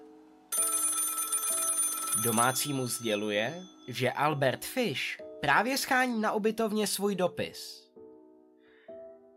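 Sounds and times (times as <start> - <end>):
old-fashioned telephone bell ringing with harsh metallic clatter: 0.5 - 4.1
speech: 2.2 - 7.8.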